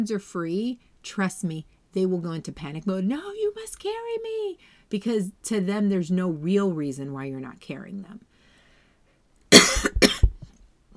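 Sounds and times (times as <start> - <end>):
speech: 0.0 - 8.3
cough: 9.5 - 10.5.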